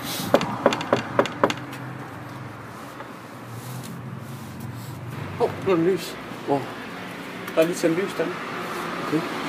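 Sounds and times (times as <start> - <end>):
firm knocking on a wooden door: 0.3 - 1.7
speech: 5.7 - 6.8, 7.5 - 9.3.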